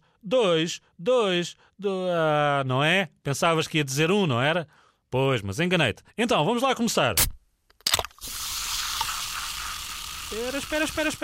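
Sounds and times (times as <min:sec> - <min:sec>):
speech: 0:00.2 - 0:07.4, 0:10.3 - 0:11.2
soda can cracking open with a metallic pop: 0:07.2 - 0:09.8
soda fizzing hiss: 0:08.2 - 0:11.2.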